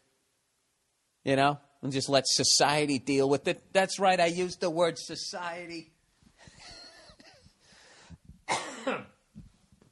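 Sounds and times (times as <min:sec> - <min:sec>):
speech: 0:01.2 - 0:06.0, 0:08.9 - 0:09.1
person coughing harshly with raspy wheezy breaths: 0:08.4 - 0:09.2.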